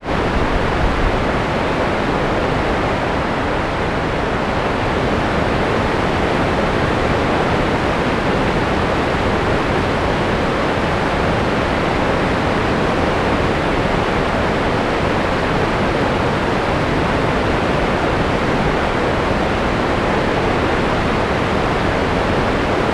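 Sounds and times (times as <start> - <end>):
waterfall heard from on top of the falls: 0.0 - 22.9.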